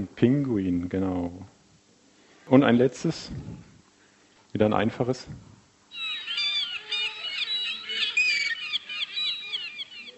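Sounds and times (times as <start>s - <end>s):
speech: 0.0s - 1.5s, 2.5s - 3.7s, 4.5s - 5.5s
seagulls calling with harsh high-pitched squawks: 5.9s - 10.1s.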